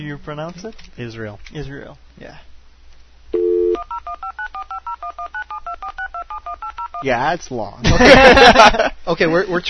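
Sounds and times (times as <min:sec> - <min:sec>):
speech: 0:00.0 - 0:02.5, 0:04.1 - 0:09.6
touch-tone telephone keypad dialing a long international number: 0:03.4 - 0:07.0
laughter: 0:07.8 - 0:09.0.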